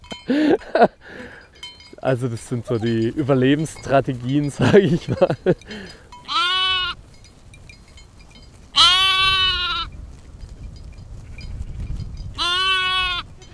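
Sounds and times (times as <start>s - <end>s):
laughter: 0.3s - 1.0s, 2.2s - 5.9s
speech: 0.3s - 1.0s, 2.0s - 6.0s
flock of sheep and lambs bleating while grazing near villages: 5.7s - 7.0s, 8.7s - 9.9s, 12.4s - 13.5s.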